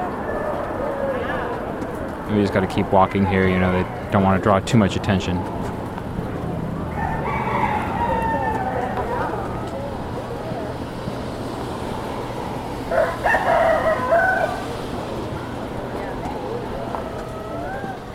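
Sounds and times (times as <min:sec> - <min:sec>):
rooster crowing among a large flock of chickens: 0:00.0 - 0:01.6, 0:06.8 - 0:09.7, 0:12.3 - 0:14.9, 0:16.8 - 0:18.1
steady noisy rumble: 0:00.0 - 0:18.1
speech: 0:02.3 - 0:05.7.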